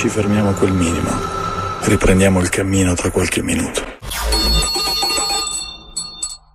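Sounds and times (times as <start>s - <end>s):
speech: 0.1s - 4.0s
small bell ringing: 4.6s - 6.5s.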